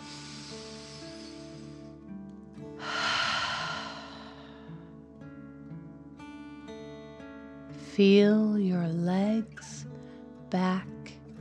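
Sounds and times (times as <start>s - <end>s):
deep breath in and rushing exhale through the mouth: 0.0s - 1.8s, 2.8s - 4.9s
soft steady sustained music tones: 0.0s - 11.3s
speech: 8.0s - 9.8s, 10.5s - 10.9s.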